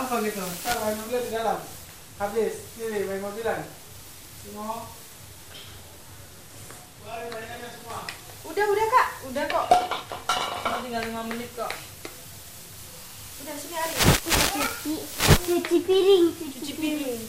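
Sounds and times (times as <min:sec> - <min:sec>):
child and adult chatting: 0:00.0 - 0:03.8, 0:04.4 - 0:05.1, 0:06.9 - 0:10.0, 0:13.4 - 0:17.2
speech: 0:00.1 - 0:03.8, 0:04.4 - 0:05.0, 0:07.0 - 0:11.9, 0:13.4 - 0:17.2
dishes and pans clattering in a sink: 0:09.7 - 0:10.9.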